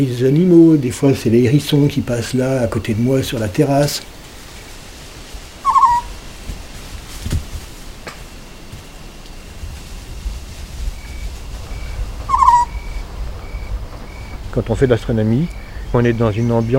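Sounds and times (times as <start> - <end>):
speech: 0.0 - 4.2, 14.6 - 16.7
faint low rumble: 0.0 - 16.7
Eurasian scops owl calling: 5.6 - 6.2, 11.0 - 13.0.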